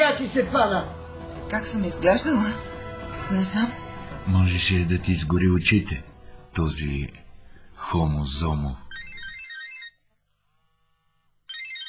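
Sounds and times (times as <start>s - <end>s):
speech: 0.2s - 2.7s, 3.3s - 7.2s, 7.8s - 8.8s
mobile phone ringtone: 8.8s - 10.0s, 11.5s - 11.8s.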